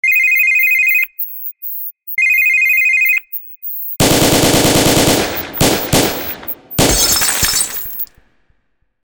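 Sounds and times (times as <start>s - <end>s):
phone ringing: 0.0s - 1.5s, 2.1s - 3.9s
gun tone: 4.0s - 8.2s.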